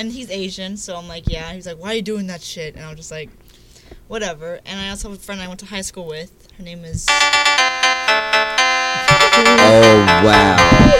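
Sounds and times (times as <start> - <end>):
speech: 0.0 - 8.3, 9.0 - 10.9
phone ringtone of bright electronic tones: 7.1 - 10.9.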